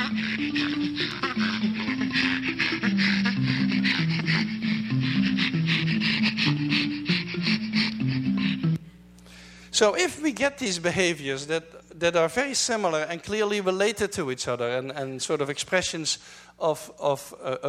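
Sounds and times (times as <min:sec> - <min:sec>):
chimpanzee laughter: 0:00.0 - 0:08.8
speech: 0:00.4 - 0:01.5, 0:09.8 - 0:17.6.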